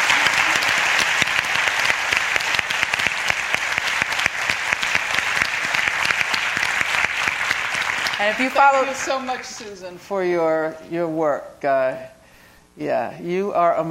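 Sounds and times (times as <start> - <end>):
audience applause: 0.0 - 9.7
speech: 8.2 - 12.2, 12.8 - 13.8.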